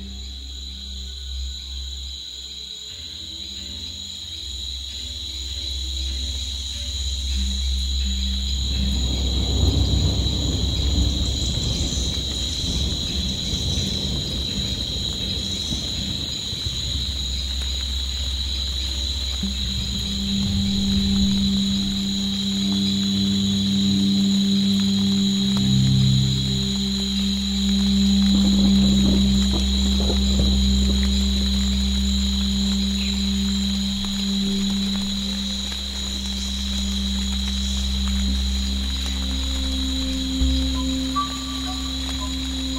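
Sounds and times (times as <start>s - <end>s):
rain arriving in a forest: 0.0s - 42.7s
steady high drone of insects: 0.0s - 42.7s
distant thunder rolling low and long: 8.9s - 17.6s, 19.5s - 33.6s.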